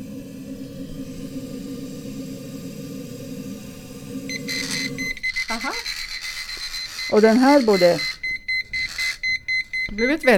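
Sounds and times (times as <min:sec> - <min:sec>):
liquid pouring from a tap into a mug: 0:00.0 - 0:06.1
hum: 0:00.0 - 0:10.3
battery-powered liquid level indicator beeping on a mug rim: 0:04.3 - 0:10.3
speech: 0:05.5 - 0:06.0, 0:07.1 - 0:08.1, 0:10.0 - 0:10.3.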